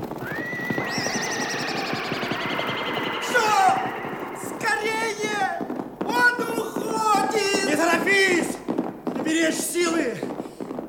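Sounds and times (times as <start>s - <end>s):
mustang herd hoofbeats galloping away: 0.0s - 4.2s, 5.6s - 10.8s
mustang horse whinnying: 0.0s - 4.8s.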